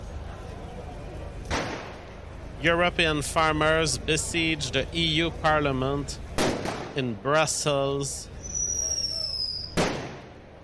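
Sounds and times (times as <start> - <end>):
low rumble of a crowd: 0.0 - 10.6
firework bursting in a sharp bang: 1.5 - 2.0, 6.4 - 7.0, 9.6 - 10.4
speech: 2.6 - 6.2, 7.0 - 8.4
firework whistling at a protest: 8.4 - 10.2.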